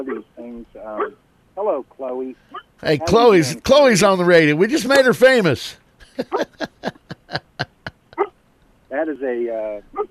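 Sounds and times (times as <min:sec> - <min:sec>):
speech: 0:00.0 - 0:07.4, 0:09.0 - 0:10.1
laughter: 0:06.0 - 0:08.3
female labradoodle yipping: 0:08.2 - 0:08.4, 0:09.9 - 0:10.1.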